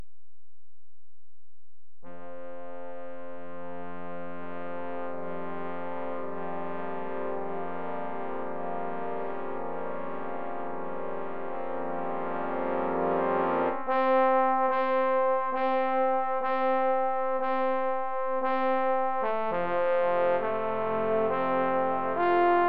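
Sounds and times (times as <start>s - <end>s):
trombone choir: 2.2s - 22.6s.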